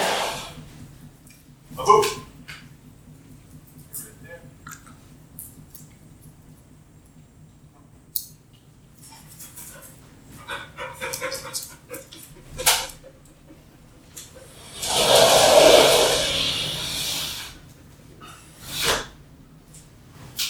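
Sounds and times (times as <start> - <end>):
steady low hum: 0.0 - 20.4
dogs panting: 9.0 - 14.6.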